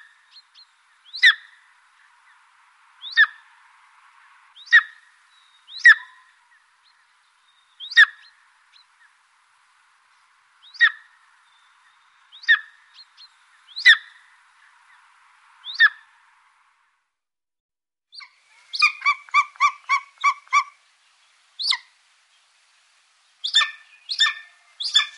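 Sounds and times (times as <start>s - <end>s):
golden eagle calling with sharp yelps: 1.1s - 1.6s, 5.7s - 6.4s, 12.4s - 12.8s, 13.8s - 14.2s, 18.2s - 20.8s, 21.6s - 21.9s, 23.4s - 25.1s.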